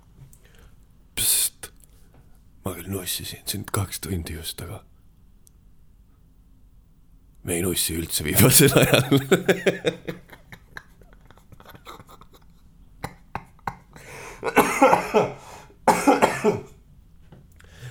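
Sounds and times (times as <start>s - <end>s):
speech: 2.6s - 4.9s, 7.4s - 10.4s
small clicks and throat noises: 8.3s - 9.2s
harsh coughing: 8.3s - 9.8s, 14.4s - 16.7s
laughter: 8.3s - 12.4s.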